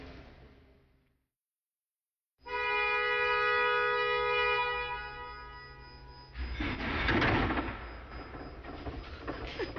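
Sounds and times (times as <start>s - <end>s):
battery locomotive tonal whine: 2.5s - 9.7s.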